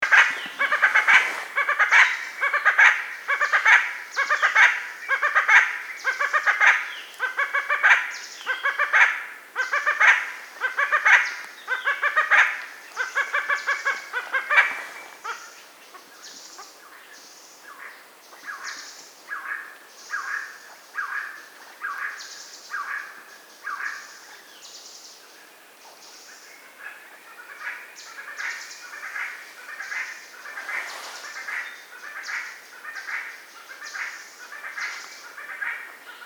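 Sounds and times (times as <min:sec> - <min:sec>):
red spurfowl Galloperdix spadicea spadicea calling: 0:00.0 - 0:16.8, 0:26.8 - 0:36.2.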